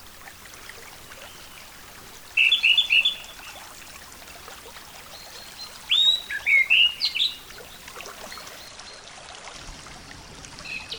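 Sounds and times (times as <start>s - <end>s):
constant hiss: 0.0s - 8.7s
orange-headed thrush warbling song: 0.0s - 8.7s.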